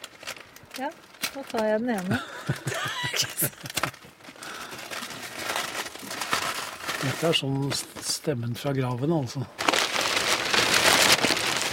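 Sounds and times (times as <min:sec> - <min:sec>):
stiff brown old tape tearing off a package: 0:00.0 - 0:01.8, 0:03.5 - 0:07.4, 0:09.6 - 0:11.7
speech: 0:00.8 - 0:03.9, 0:07.0 - 0:09.6
laughter: 0:02.1 - 0:04.0.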